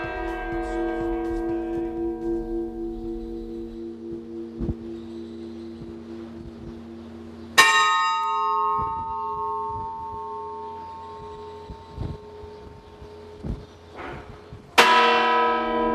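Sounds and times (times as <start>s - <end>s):
large church bell tolling: 0.0s - 15.9s.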